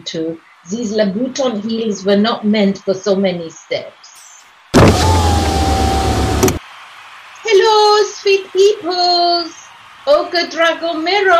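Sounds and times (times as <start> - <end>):
speech: 0.0 - 4.0, 7.6 - 11.3
car electric window whirring down with a motor hum: 4.8 - 6.6.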